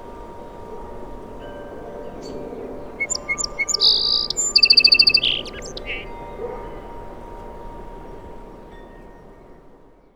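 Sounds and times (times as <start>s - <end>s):
song sparrow singing: 2.2s - 6.4s.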